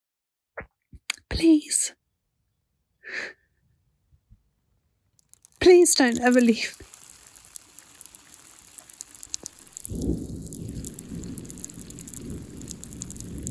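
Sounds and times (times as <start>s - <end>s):
speech: 1.3s - 2.0s, 5.6s - 6.9s
steady rain pattering and hissing: 5.2s - 13.5s
deep rolling rumble of distant thunder: 8.8s - 13.5s.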